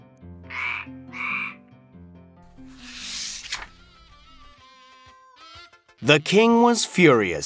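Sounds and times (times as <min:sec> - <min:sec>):
soft music: 0:00.0 - 0:07.4
frog croaking: 0:00.5 - 0:01.6
speech: 0:06.0 - 0:07.4.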